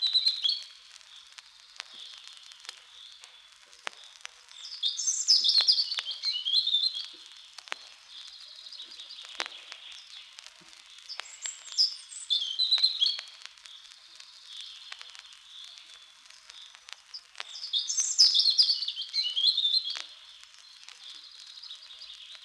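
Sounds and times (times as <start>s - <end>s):
faint clicks and crackle: 0.0s - 22.4s
European Robin singing from the top of a small spruce: 4.5s - 22.4s.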